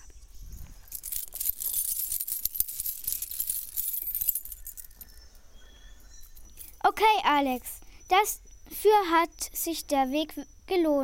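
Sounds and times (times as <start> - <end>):
pile of coins clinking in a treasure chest: 0.9 - 5.2
speech: 7.0 - 11.0.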